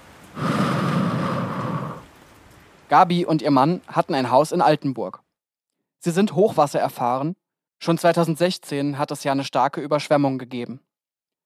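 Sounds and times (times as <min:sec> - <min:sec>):
woman taking a deep breath in and breathing out slowly: 0:00.3 - 0:02.1
speech: 0:02.9 - 0:05.2, 0:06.0 - 0:10.9.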